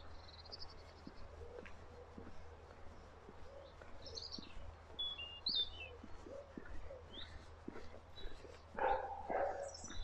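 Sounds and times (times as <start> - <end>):
birds chirping: 0.0 - 10.0
playful dog barking: 8.8 - 9.8.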